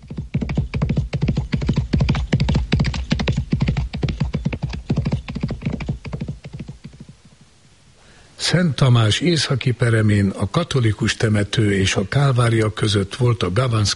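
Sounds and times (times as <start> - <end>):
hooves of horses trotting clip-clopping: 0.0 - 7.5
speech: 8.5 - 13.9.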